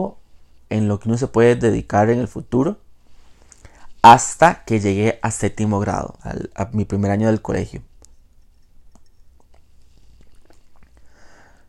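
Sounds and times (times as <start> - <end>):
speech: 0.0 - 2.8, 4.0 - 7.9
small wet mouth clicks: 8.0 - 11.1
person sipping tea: 8.6 - 11.6.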